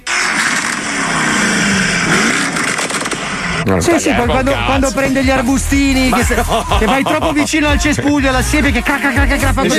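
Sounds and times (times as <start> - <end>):
750-horsepower engine revving with crackling pops: 0.0 - 6.4
laughter: 3.7 - 8.7
speech: 3.7 - 9.7.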